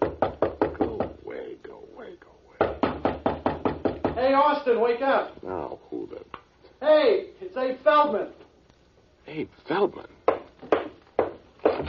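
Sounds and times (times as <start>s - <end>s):
rapid knocking on a door: 0.0s - 1.3s, 2.6s - 4.4s, 10.3s - 11.8s
speech: 4.2s - 5.5s, 6.8s - 8.4s, 9.3s - 10.2s.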